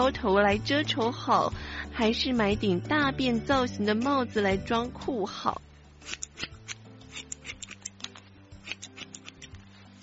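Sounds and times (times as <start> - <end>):
speech: 0.0 - 6.5
faint low musical hum: 0.0 - 10.0
scissors snipping hair: 6.0 - 10.0.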